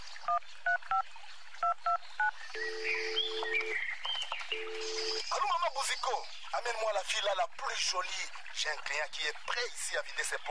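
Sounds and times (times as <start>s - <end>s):
birds chirping: 0.0s - 10.4s
speech: 0.3s - 3.8s, 4.6s - 10.4s
telephone keypad dialing beeps: 1.6s - 3.8s, 4.5s - 5.3s.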